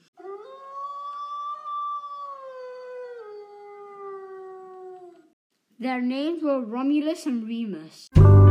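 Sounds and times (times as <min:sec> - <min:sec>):
wolf howling: 0:00.2 - 0:05.4
speech: 0:05.8 - 0:08.4.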